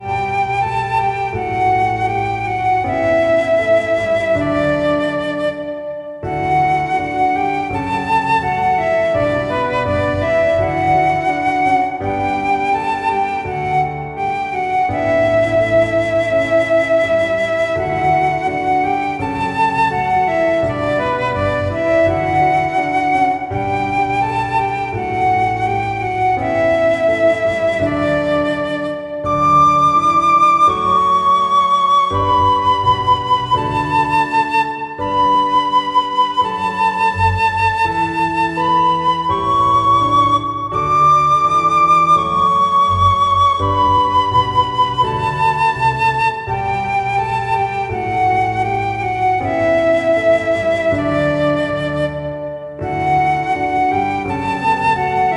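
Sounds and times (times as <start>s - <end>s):
flute playing a hymn: 0.0s - 55.3s
piano playing a hymn: 0.0s - 55.3s.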